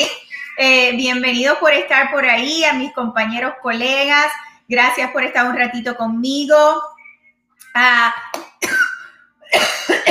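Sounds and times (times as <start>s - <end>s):
speech: 0.0s - 6.9s, 7.7s - 8.8s
harsh raspy coughs: 8.6s - 10.0s.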